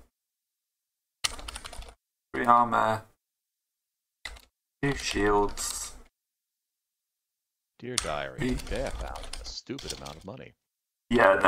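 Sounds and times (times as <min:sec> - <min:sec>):
typing notes on a computer keyboard: 0:01.2 - 0:02.0, 0:04.2 - 0:04.5, 0:08.0 - 0:10.3
speech: 0:02.4 - 0:03.1, 0:04.8 - 0:05.8, 0:07.8 - 0:11.4.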